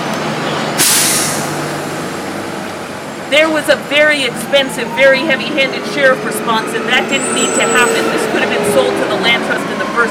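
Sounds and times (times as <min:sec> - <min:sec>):
truck rumbling: 0:00.0 - 0:10.1
truck air brake hiss: 0:00.8 - 0:01.5
speech: 0:03.3 - 0:10.1.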